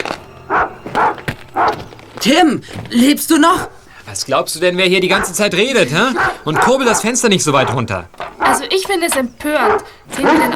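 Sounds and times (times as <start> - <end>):
guard dogs barking: 0.4 - 2.0, 3.4 - 3.9, 4.8 - 10.5
speech: 2.2 - 10.5.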